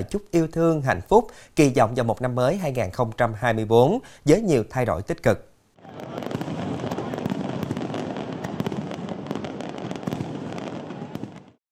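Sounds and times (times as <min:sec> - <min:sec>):
speech: 0:00.0 - 0:06.3
crowd murmur: 0:05.8 - 0:07.4
fireworks bursting over a city at midnight: 0:05.8 - 0:11.6.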